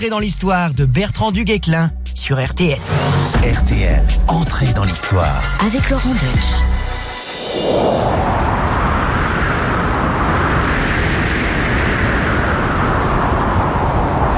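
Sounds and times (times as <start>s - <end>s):
speech: 0.0s - 6.7s, 7.6s - 8.4s
deep low rumble: 2.6s - 14.3s
heavy storm rain pouring: 4.4s - 14.3s.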